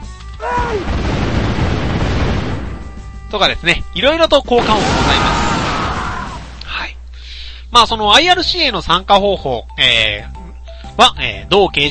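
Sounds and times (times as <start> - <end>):
cannon blast: 0.6 - 3.0, 4.6 - 6.6
speech: 3.3 - 5.4, 7.7 - 10.3, 11.0 - 11.8.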